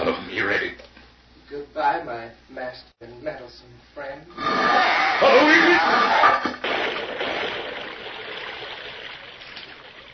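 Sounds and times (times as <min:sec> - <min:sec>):
speech: 0:02.0 - 0:06.5
water rushing into a well: 0:04.7 - 0:10.1.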